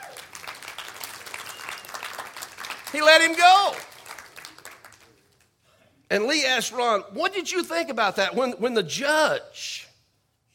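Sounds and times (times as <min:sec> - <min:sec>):
crowd applauding: 0:00.0 - 0:05.4
speech: 0:02.9 - 0:03.9, 0:06.1 - 0:09.8.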